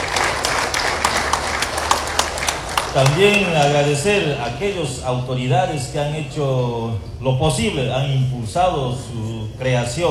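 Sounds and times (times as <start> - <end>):
audience applause at a municipal council ceremony in Bolivia: 0.0 - 4.0
speech: 2.9 - 10.0.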